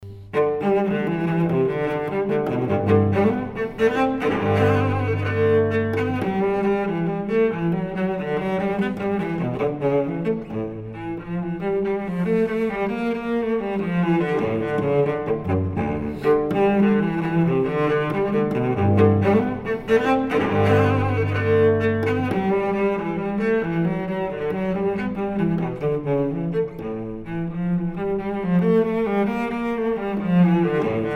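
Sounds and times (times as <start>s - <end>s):
solo cello gigue in G major: 0.0s - 31.1s.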